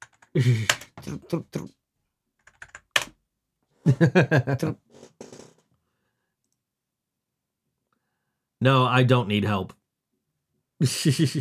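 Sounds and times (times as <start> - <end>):
computer keyboard typing: 0.0 - 1.0, 2.4 - 3.2
speech: 0.4 - 1.8, 3.9 - 5.2, 8.6 - 9.8, 10.8 - 11.3.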